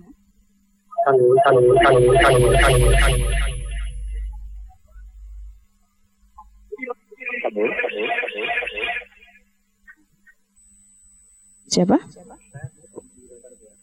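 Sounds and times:
low mains hum: 0.0 - 13.8
speech: 1.0 - 3.4, 11.7 - 12.2
tinny caller voice on a phone-in telephone line: 6.8 - 9.0.

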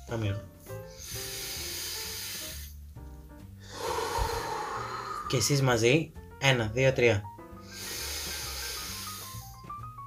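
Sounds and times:
soft sustained music: 0.0 - 10.0
speech: 0.1 - 1.2, 5.3 - 7.3
long airy breath in and out: 0.7 - 2.8, 3.6 - 5.5, 7.5 - 9.7.

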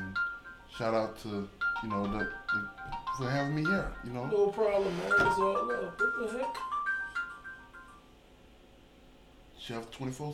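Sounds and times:
tinkling electronic phone ringtone melody: 0.0 - 0.8, 1.6 - 8.2
speech: 0.8 - 6.7, 9.6 - 10.3.

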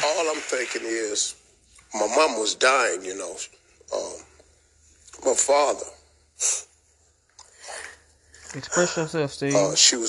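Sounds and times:
speech: 0.2 - 4.3, 5.1 - 6.7, 8.5 - 10.0
person sneezing: 6.4 - 6.7
breathy exhalations: 7.4 - 8.6.

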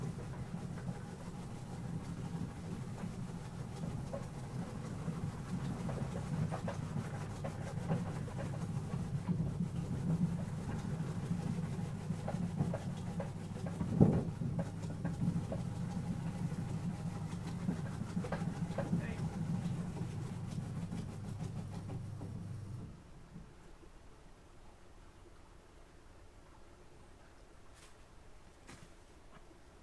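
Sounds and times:
shredding machine humming while cutting washed daikon into strips: 0.0 - 23.0.

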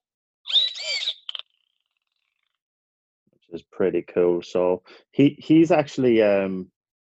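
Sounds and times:
electronic dolphin whistle from an animal-sounds toy: 0.4 - 1.4
speech: 3.5 - 6.7.

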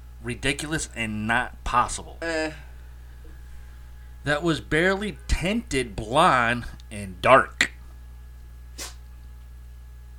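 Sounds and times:
steady low hum in a quiet room: 0.0 - 10.1
speech: 0.2 - 2.7, 4.2 - 7.7
cat sneezing: 8.8 - 9.0.

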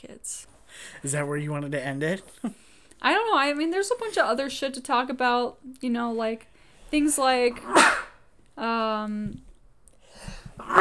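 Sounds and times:
speech: 0.2 - 8.0, 8.6 - 9.4
sneeze caused by seasonal allergies: 7.6 - 8.2, 10.6 - 10.7.

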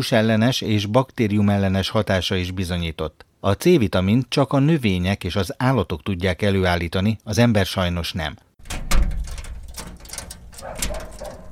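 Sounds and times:
speech: 0.0 - 8.8
heavy cellar door opened by a man: 8.6 - 11.4
sharp metallic clicks from cellar door latch and hinges: 8.6 - 11.4.

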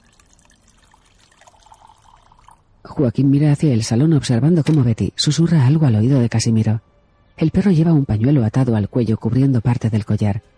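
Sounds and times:
tea being poured in a kitchen: 0.0 - 2.7
speech: 2.8 - 10.5.

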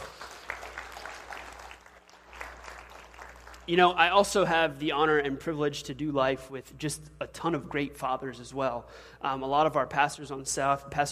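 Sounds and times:
audience applause in a church hall: 0.0 - 3.7
speech: 3.7 - 11.1.

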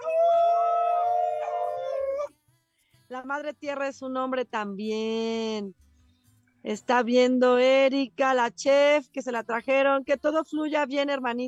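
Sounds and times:
wolf howling: 0.0 - 2.3
speech: 3.2 - 5.8, 6.6 - 11.4.

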